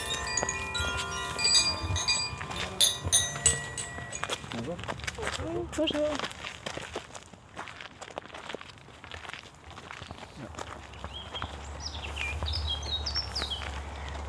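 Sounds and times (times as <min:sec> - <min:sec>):
birds chirping in high-pitched bursts: 0:00.0 - 0:04.4
steady outdoor noise: 0:00.0 - 0:14.2.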